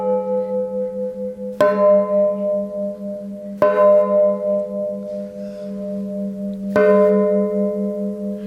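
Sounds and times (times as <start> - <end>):
church bells ringing: 0.0 - 8.4.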